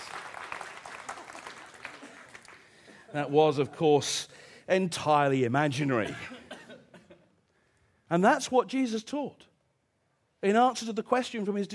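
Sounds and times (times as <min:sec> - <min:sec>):
audience applause: 0:00.0 - 0:02.9
speech: 0:03.1 - 0:06.4, 0:08.1 - 0:09.5, 0:10.4 - 0:11.7.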